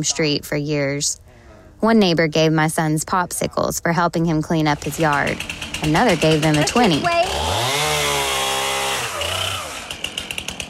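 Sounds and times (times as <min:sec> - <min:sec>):
speech: 0:00.0 - 0:07.6
chainsaw cutting wood: 0:04.7 - 0:10.6.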